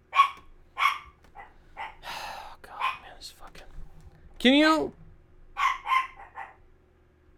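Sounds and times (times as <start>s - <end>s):
dog barking at people cleaning the building outside the door: 0.0s - 3.4s, 5.5s - 6.6s
speech: 4.4s - 5.0s.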